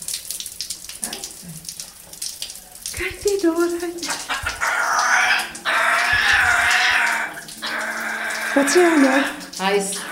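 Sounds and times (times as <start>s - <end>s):
shower water spraying on a parrot: 0.0s - 10.1s
speech: 3.0s - 4.4s, 8.6s - 10.0s
parrot growling at a microphone: 4.3s - 9.4s.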